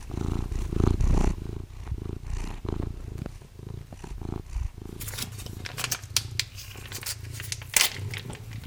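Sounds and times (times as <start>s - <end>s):
tomcat purring while waiting for commercial cat food: 0.0s - 8.6s
crinkly rustling: 5.0s - 8.6s.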